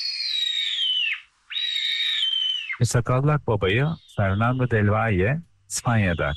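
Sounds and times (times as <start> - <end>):
Eurasian sparrowhawk calling in Konya: 0.0 - 2.8, 3.7 - 5.0, 5.8 - 6.3
speech: 2.8 - 6.3.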